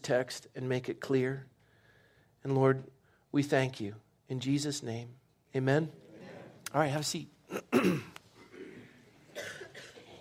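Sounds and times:
speech: 0.0 - 1.5, 2.4 - 6.0, 6.7 - 8.1
people coughing in a room: 7.5 - 10.2.

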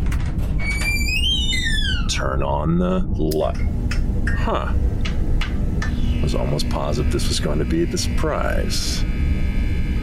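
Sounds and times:
door hinges creaking as door swings open: 0.0 - 2.3
low steady rumble: 0.0 - 10.0
speech: 2.2 - 5.1, 6.2 - 9.1.

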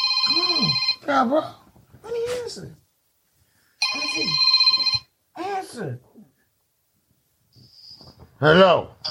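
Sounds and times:
telephone ringing: 0.0 - 1.1, 3.8 - 5.1
speech: 0.3 - 2.8, 3.9 - 4.5, 5.4 - 6.1, 8.4 - 9.0.

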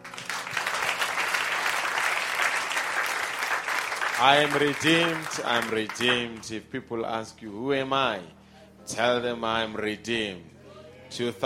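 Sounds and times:
audience at a church service applauding: 0.0 - 6.5
speech: 4.2 - 10.5, 11.1 - 11.4.

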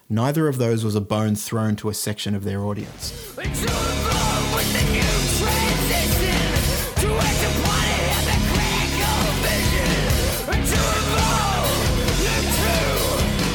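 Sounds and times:
speech: 0.1 - 4.0
distorted hard rock guitars: 2.8 - 13.5
harsh screamed hard rock vocals: 2.8 - 13.5
pounding hard rock drums: 2.8 - 13.5.

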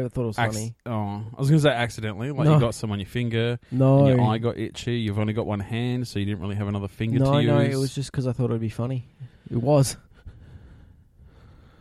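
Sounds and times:
speech: 0.0 - 10.0
heavy breathing into a microphone: 9.1 - 11.7.

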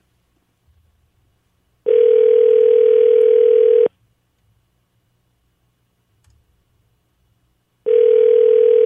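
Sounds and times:
telephone ringback tone: 1.9 - 3.9, 7.9 - 8.8.

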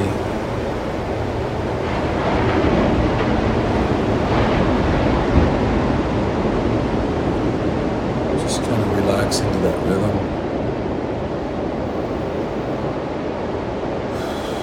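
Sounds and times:
ocean waves crashing and rolling back: 0.0 - 14.6
wind noise: 0.0 - 14.6.

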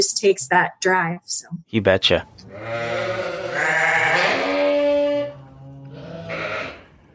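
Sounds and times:
speech: 0.2 - 4.5
sheep bleating: 2.5 - 7.0.

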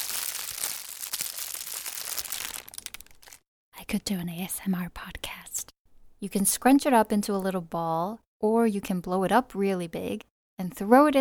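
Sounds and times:
plastic bag crinkling and crackling: 0.0 - 3.4
speech: 3.9 - 5.4, 6.2 - 11.1.

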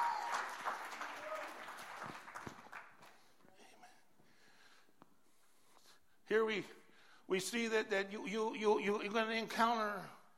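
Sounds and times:
cheering voices in a church audience: 0.0 - 2.0
church audience applause as a clap offering: 0.0 - 3.3
speech: 6.3 - 10.2.

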